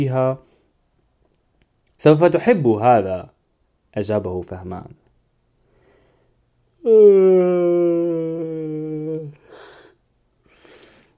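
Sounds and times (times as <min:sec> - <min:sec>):
speech: 0:00.0 - 0:00.5, 0:02.0 - 0:05.0, 0:06.8 - 0:09.6
person yawning: 0:06.8 - 0:10.0
breathy exhales: 0:09.0 - 0:11.1.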